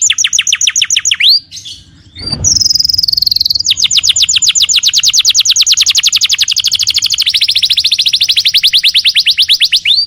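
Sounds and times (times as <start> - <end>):
canary song: 0.0 - 10.0
speech: 1.4 - 2.5.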